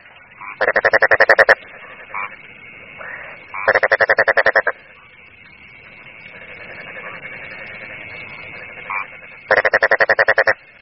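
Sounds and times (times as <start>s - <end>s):
frog croaking ringtone: 0.3s - 2.4s, 3.0s - 5.1s, 5.8s - 10.7s.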